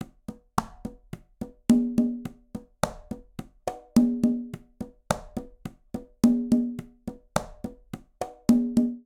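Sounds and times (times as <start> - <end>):
conga playing charanga cha-cha-cha rhythm, Latin percussion: 0.0 - 9.0.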